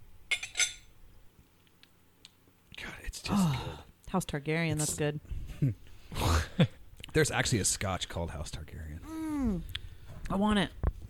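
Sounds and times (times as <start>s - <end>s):
glasses clinking in a toast: 0.3s - 0.9s
speech: 2.8s - 10.8s.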